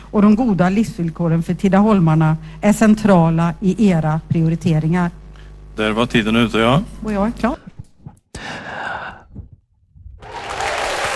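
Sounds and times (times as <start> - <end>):
speech: 0.1 - 5.2, 5.8 - 7.7
audience applause: 10.2 - 11.1.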